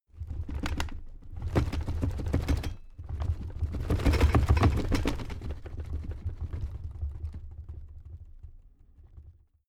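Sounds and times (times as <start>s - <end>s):
crammed drawer cabinet rattling: 0.2s - 5.6s.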